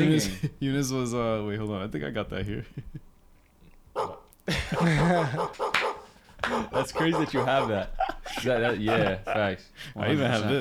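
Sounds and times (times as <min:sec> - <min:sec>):
speech: 0:00.0 - 0:03.1, 0:04.0 - 0:05.8, 0:06.4 - 0:10.5
dog barking: 0:04.0 - 0:07.9
laughter: 0:04.5 - 0:10.5.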